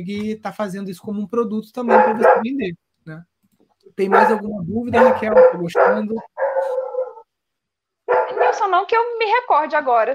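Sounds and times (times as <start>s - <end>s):
speech: 0.0s - 3.3s, 4.0s - 6.8s, 8.6s - 10.1s
dogs barking outside: 1.8s - 2.5s, 4.0s - 7.3s, 8.1s - 8.8s.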